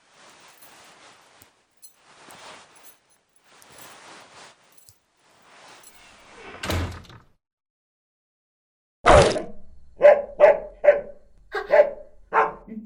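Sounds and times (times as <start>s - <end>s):
door opening and slamming shut: 6.4s - 7.4s
large wolfdog barking: 10.0s - 12.7s.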